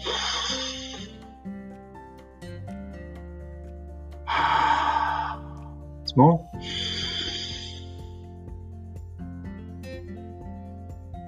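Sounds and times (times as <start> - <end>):
person exhaling in a guided breathing exercise: 0.0 - 1.2, 4.3 - 5.7, 6.6 - 8.1
person inhaling in a guided breathing exercise: 0.0 - 1.2, 4.3 - 5.8, 6.6 - 8.1
soft sustained musical tones: 0.0 - 11.2
speech: 6.2 - 6.9.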